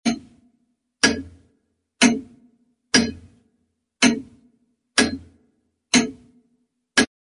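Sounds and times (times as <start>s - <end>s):
grandfather clock ticking: 0.0s - 0.4s, 1.0s - 1.4s, 2.0s - 3.4s, 4.0s - 6.4s.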